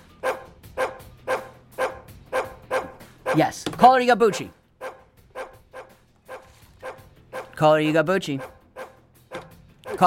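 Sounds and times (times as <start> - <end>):
dog barking in a studio: 0.2 - 3.4, 4.8 - 7.6, 8.3 - 10.0
speech: 3.4 - 4.6, 7.6 - 8.6.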